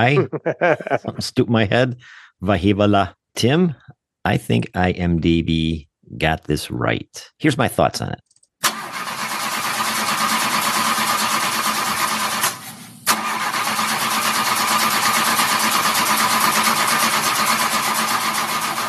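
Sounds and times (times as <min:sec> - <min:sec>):
laughter: 0:00.0 - 0:02.8
speech: 0:00.0 - 0:08.3
car engine cranking without catching: 0:08.6 - 0:18.8.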